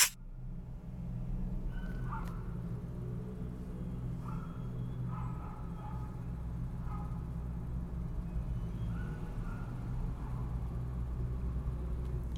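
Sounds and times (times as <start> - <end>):
deep engine rumble inside a car: 0.1 - 12.3.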